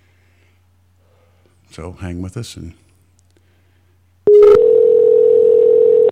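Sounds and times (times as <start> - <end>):
speech: 1.8 - 2.8
telephone dial tone while placing call: 4.3 - 6.1.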